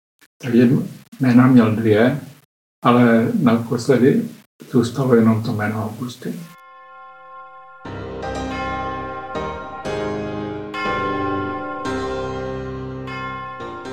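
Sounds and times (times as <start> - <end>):
speech: 0.4 - 6.6
large church bell ringing: 6.6 - 13.9.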